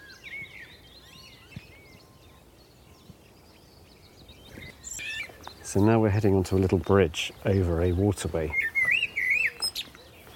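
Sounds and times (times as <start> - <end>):
blackbird singing: 0.0 - 10.3
speech: 5.7 - 8.7.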